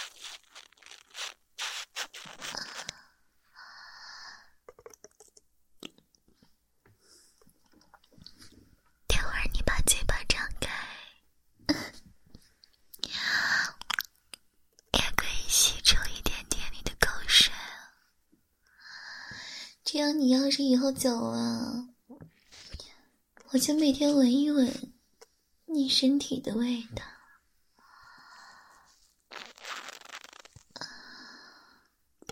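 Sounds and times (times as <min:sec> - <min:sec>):
water beads squeezed inside a sponge: 0:00.0 - 0:03.0
person whispering: 0:09.1 - 0:11.2, 0:15.0 - 0:18.0
speech: 0:20.2 - 0:21.9, 0:23.5 - 0:24.9, 0:25.7 - 0:27.0.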